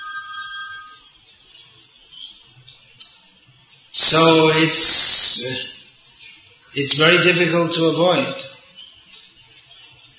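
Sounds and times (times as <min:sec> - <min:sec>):
cell phone ringtone with electronic tones: 0:00.0 - 0:01.9
faint hiss: 0:01.8 - 0:10.1
speech: 0:06.8 - 0:08.5.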